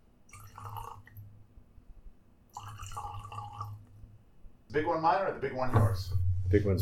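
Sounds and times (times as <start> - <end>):
drink pouring into a glass from a cask: 0.3 - 1.3, 2.5 - 3.9
speech: 4.7 - 6.8.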